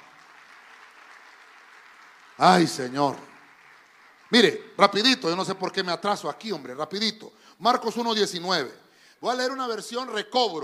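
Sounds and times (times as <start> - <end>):
audience clapping: 0.0 - 5.9
speech: 2.4 - 3.3, 4.3 - 10.6.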